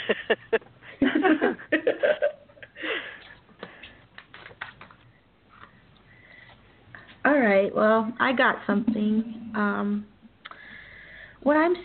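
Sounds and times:
person laughing briefly: 0:00.0 - 0:03.3
speech: 0:00.1 - 0:00.7, 0:07.8 - 0:10.1, 0:11.4 - 0:11.8
rustling and shuffling movements of several people: 0:02.9 - 0:07.5
clicks and taps: 0:03.6 - 0:06.6.

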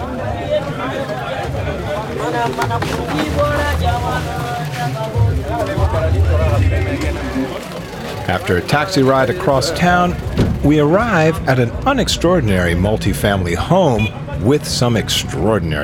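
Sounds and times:
hawkers and shoppers voices and calls on a busy commercial city street: 0:00.0 - 0:15.8
music on a busy commercial city street: 0:01.2 - 0:08.0
speech: 0:02.2 - 0:15.8.

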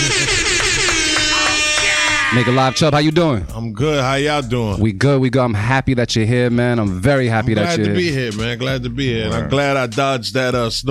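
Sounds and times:
air horn sound effect blasts: 0:00.0 - 0:03.3
speech: 0:02.3 - 0:10.9.

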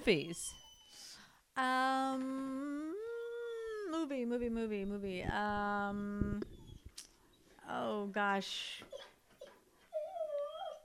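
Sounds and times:
speech: 0:00.0 - 0:00.6, 0:01.6 - 0:02.9, 0:03.9 - 0:07.1, 0:07.7 - 0:09.1
dog whimpering with high-pitched whiny cries: 0:00.0 - 0:01.2, 0:03.0 - 0:04.0, 0:06.4 - 0:07.5, 0:08.8 - 0:10.8.

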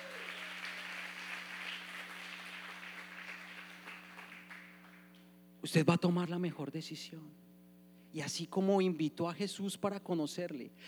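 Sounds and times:
large crowd applauding: 0:00.0 - 0:05.2
speech: 0:05.6 - 0:07.4, 0:08.2 - 0:10.8.

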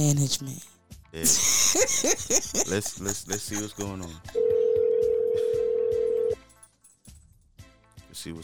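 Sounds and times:
speech: 0:00.0 - 0:04.4, 0:08.2 - 0:08.4
laughter: 0:01.2 - 0:04.4
phone call ringing tone on the phone line: 0:04.4 - 0:06.4.

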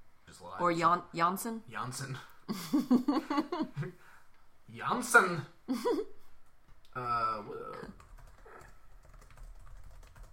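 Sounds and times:
speech: 0:00.6 - 0:04.1, 0:04.7 - 0:06.2, 0:06.9 - 0:08.0
typing on a computer keyboard: 0:07.9 - 0:10.3.

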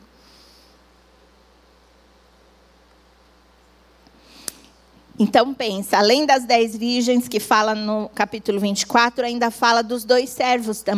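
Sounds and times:
hiss of a quiet room: 0:00.0 - 0:10.9
small sharp click: 0:04.0 - 0:04.8
speech: 0:05.2 - 0:10.9.

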